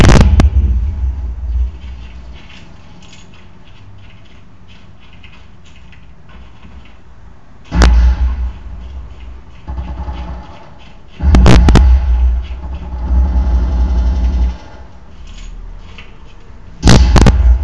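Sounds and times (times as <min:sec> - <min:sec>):
grenade explosions in a video game: 0:00.0 - 0:03.0, 0:07.7 - 0:15.1, 0:16.8 - 0:17.6
quieter crackling video game noise: 0:00.0 - 0:17.6.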